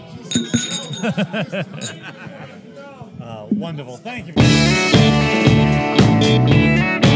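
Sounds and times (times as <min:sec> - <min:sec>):
glass bottle clinking: 0:00.3 - 0:02.2
speech: 0:00.4 - 0:02.1, 0:03.5 - 0:07.0.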